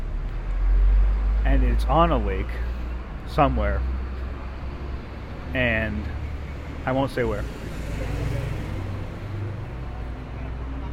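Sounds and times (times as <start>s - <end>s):
road traffic engine and tyre drone: 0.0s - 10.9s
speech: 1.4s - 3.9s, 5.5s - 6.2s, 6.8s - 8.2s.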